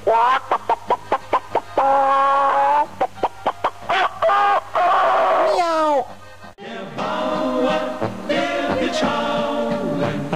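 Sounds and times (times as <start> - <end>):
hen cackling on a farm: 0.0 - 6.2
hens clucking on a farm in the morning: 0.0 - 10.3
speech: 0.1 - 0.5.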